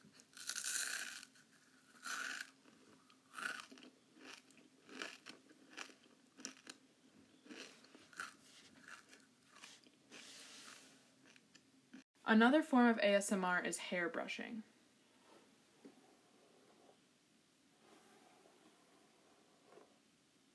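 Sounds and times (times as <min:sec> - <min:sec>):
crunchy chewing and biting during a mukbang: 0:00.1 - 0:12.0
speech: 0:12.3 - 0:14.7.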